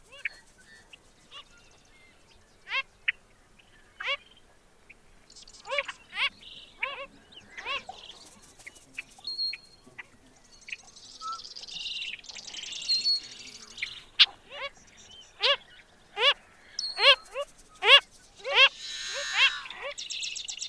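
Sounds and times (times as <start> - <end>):
background hiss: 0.0 - 20.6
Wilson's phalarope Phalaropus tricolor giving nasal grunting notes: 18.6 - 19.9.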